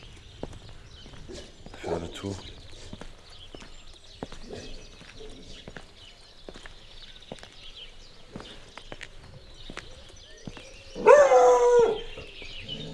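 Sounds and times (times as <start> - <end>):
clicking footsteps on a hard surface: 0.0 - 10.9
speech: 2.0 - 2.6
dog barking: 11.0 - 12.2.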